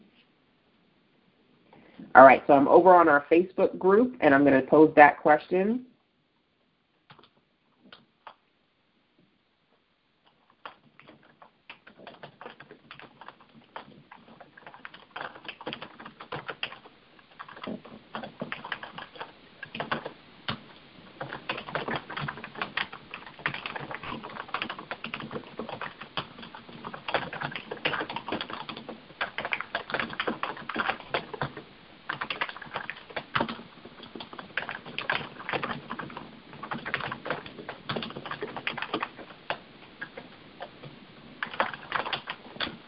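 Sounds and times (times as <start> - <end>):
speech: 2.1 - 5.9
typing on a computer keyboard: 7.1 - 8.4, 10.2 - 42.8.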